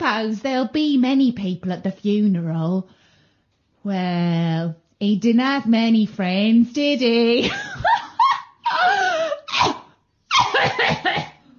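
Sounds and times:
speech: 0:00.1 - 0:03.0, 0:03.8 - 0:07.8
woman coughing in a harsh hacking fit: 0:09.4 - 0:11.4.

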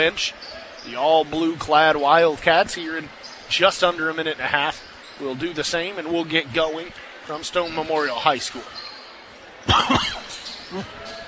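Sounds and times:
speech: 0:00.0 - 0:08.8, 0:09.6 - 0:10.1, 0:10.7 - 0:11.0
person coughing: 0:09.7 - 0:10.8.

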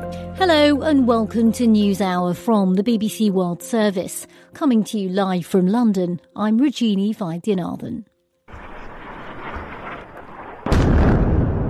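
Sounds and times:
speech: 0:00.4 - 0:08.1
heavy explosion in a war zone: 0:08.5 - 0:11.6
rumbling from a war zone: 0:08.5 - 0:11.6.

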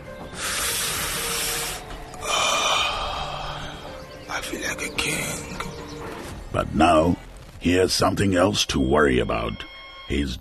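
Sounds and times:
person inhaling smoke from burning leaves: 0:00.4 - 0:03.9
speech: 0:06.5 - 0:10.3.

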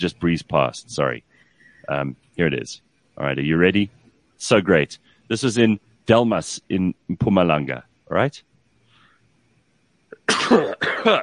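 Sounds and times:
speech: 0:00.0 - 0:08.5, 0:10.5 - 0:11.2
person sneezing: 0:10.2 - 0:11.2.

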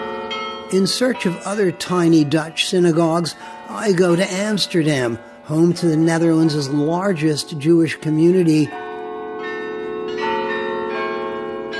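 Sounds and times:
South Church bells ringing in Amsterdam Netherlands: 0:00.0 - 0:11.7
speech: 0:00.7 - 0:08.8.

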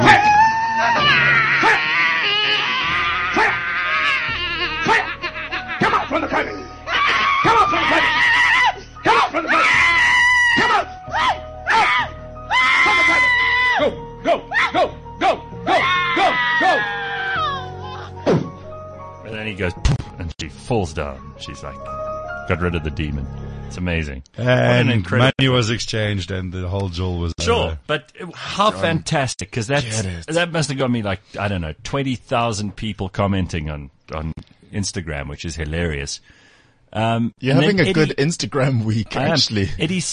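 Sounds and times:
woman screaming and wailing: 0:00.0 - 0:18.1
speech: 0:20.9 - 0:40.1.

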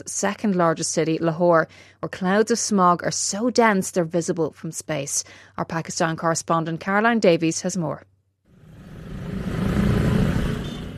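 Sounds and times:
speech: 0:00.0 - 0:08.1
busy city street traffic rumbling: 0:08.5 - 0:10.9
vehicles passing: 0:08.5 - 0:10.9.

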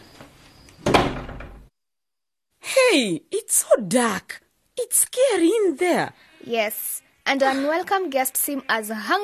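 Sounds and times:
door opening with a clunk and rattling creak: 0:00.0 - 0:01.7
speech: 0:02.9 - 0:09.2.

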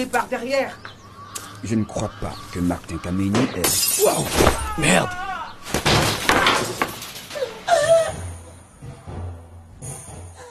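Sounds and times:
speech: 0:00.0 - 0:00.9, 0:01.6 - 0:05.2
wood splintering and breaking: 0:05.6 - 0:07.6
house door forced open with a loud crash: 0:05.8 - 0:07.4.

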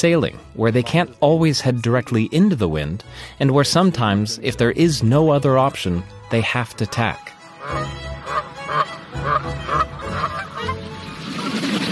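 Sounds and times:
speech: 0:00.0 - 0:09.6
flock of geese honking: 0:06.5 - 0:11.6.

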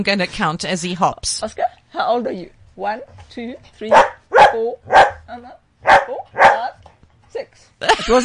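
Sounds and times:
speech: 0:00.0 - 0:06.7, 0:07.3 - 0:08.2
female dog barking: 0:03.9 - 0:06.8.

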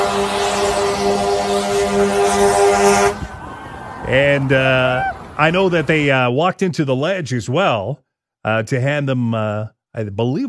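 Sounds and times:
car horns honking in support of teachers: 0:00.0 - 0:03.4
steady roar of street traffic: 0:00.0 - 0:06.3
speech: 0:04.1 - 0:10.4.

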